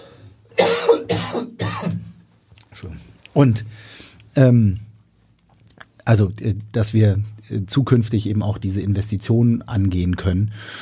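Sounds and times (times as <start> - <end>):
person coughing harshly: 0.5 - 2.2
speech: 2.8 - 4.9, 6.1 - 10.8.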